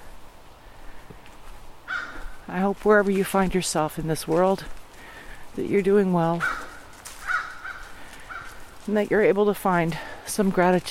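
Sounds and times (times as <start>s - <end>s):
crow cawing: 1.8s - 2.5s, 6.4s - 8.8s
speech: 2.5s - 4.8s, 5.6s - 6.6s, 8.9s - 10.9s.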